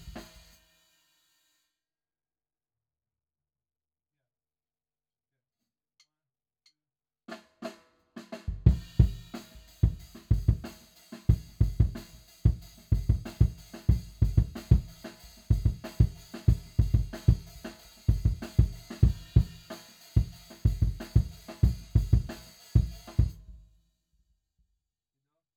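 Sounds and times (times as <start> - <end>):
kick drum: 8.5 - 10.7, 11.3 - 23.6.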